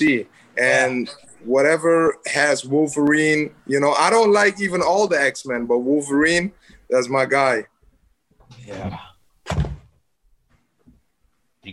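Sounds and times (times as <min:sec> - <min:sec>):
speech: 0:00.0 - 0:07.7, 0:08.5 - 0:09.6
office chair height mechanism dropping with a heavy thunk: 0:09.4 - 0:10.0.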